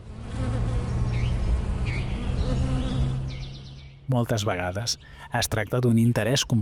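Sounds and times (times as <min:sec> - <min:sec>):
wild and domestic bees buzzing around flowers in an unsprayed field: 0:00.0 - 0:04.1
speech: 0:04.1 - 0:06.6.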